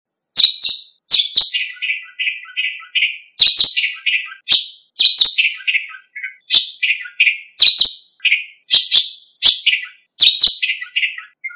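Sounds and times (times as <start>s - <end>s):
bird loud scratchy bursts of notes in Indonesia: 0.4s - 11.5s.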